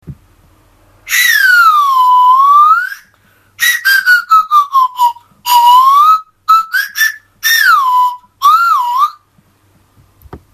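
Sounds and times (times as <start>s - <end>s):
straw whistle: 1.1s - 9.3s.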